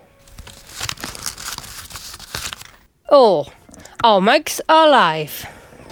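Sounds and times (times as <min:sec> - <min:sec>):
piece of paper being crumpled: 0:00.2 - 0:02.9
speech: 0:03.1 - 0:05.6.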